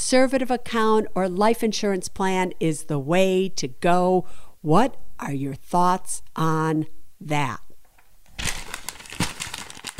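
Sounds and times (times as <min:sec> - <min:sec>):
speech: 0:00.0 - 0:07.6
paper crumpling: 0:08.3 - 0:09.9.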